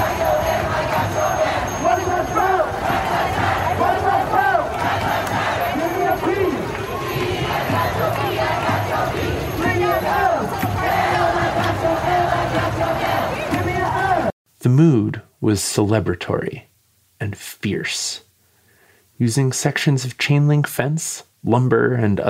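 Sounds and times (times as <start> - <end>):
large protest crowd singing, shouting and chanting at a federal courthouse: 0.0 - 14.3
speech: 14.6 - 18.2, 19.2 - 22.2.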